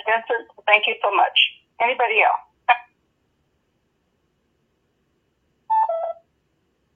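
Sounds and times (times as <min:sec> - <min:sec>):
speech: 0:00.1 - 0:02.5
cuckoo clock call: 0:05.7 - 0:06.2.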